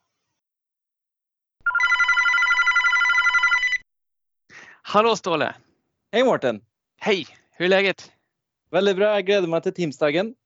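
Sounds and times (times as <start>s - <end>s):
telephone ringing in a two-tone burst: 1.6s - 3.8s
speech: 4.9s - 10.4s.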